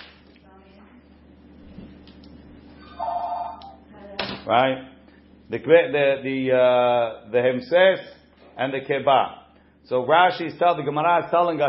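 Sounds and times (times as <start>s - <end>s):
telephone ringing with electronic trill: 2.8s - 3.8s
speech: 4.5s - 11.6s.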